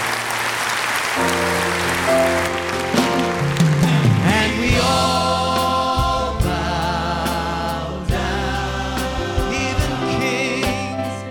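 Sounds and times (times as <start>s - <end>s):
audience clapping: 0.0s - 4.5s
sustained keyboard or organ music: 0.0s - 11.2s.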